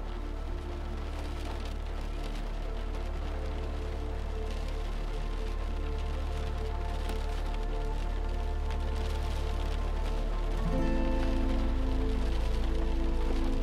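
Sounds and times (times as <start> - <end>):
rain falling and trickling outside: 0.0 - 13.6.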